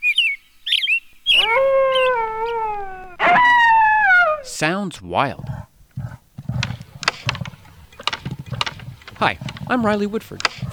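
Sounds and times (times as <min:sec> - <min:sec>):
caribou giving low rough grunts: 0:01.2 - 0:10.7
speech: 0:04.6 - 0:05.7, 0:09.2 - 0:10.7
sharp dry clicks: 0:05.4 - 0:10.7.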